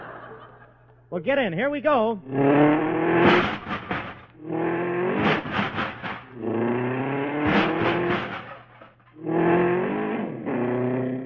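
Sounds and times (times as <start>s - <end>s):
laughter: 0.0s - 1.1s
speech: 1.1s - 3.5s
old hot rod engine revving pulling out of a parking spot: 2.2s - 11.2s.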